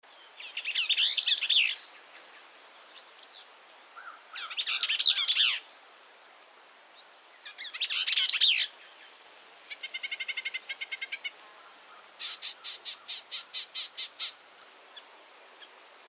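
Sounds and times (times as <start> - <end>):
Bell's vireo singing: 0.1 - 2.2, 2.9 - 5.7, 7.0 - 14.6.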